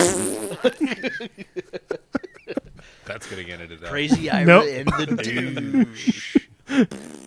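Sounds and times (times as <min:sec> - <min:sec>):
loud raspy fart noise: 0:00.0 - 0:00.7, 0:06.9 - 0:07.2
speech: 0:00.0 - 0:01.8, 0:03.2 - 0:07.1
laughter: 0:00.5 - 0:06.9.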